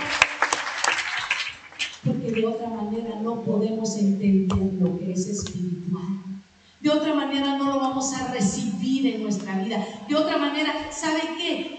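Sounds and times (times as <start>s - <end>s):
crowd applauding: 0.0s - 2.0s
sharp individual claps: 0.0s - 2.1s
speech: 2.0s - 11.7s.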